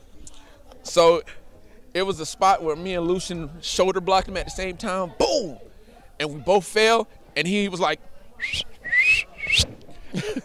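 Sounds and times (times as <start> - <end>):
faint breathy noise: 0.0 - 10.4
laughter: 0.0 - 10.4
murmur of voice: 0.0 - 10.4
speech: 1.0 - 1.4, 2.0 - 8.8, 10.1 - 10.4
person whistling: 8.4 - 9.7.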